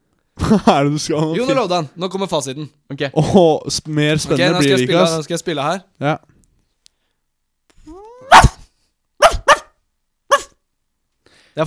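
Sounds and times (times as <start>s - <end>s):
speech: 0.5s - 6.3s
dog whining from a YouTube video: 7.8s - 9.7s, 10.3s - 10.5s
dog barking from a YouTube video: 8.0s - 8.6s, 9.2s - 10.6s.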